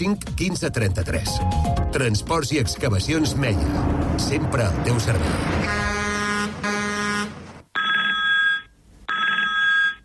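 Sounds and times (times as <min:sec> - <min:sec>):
speech: 0:00.0 - 0:06.0
steady horn-like blare: 0:05.5 - 0:07.4
telephone ringing: 0:07.7 - 0:10.0.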